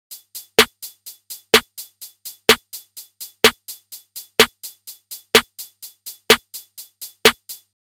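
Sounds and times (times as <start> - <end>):
dry snare drum: 0.1 - 7.8.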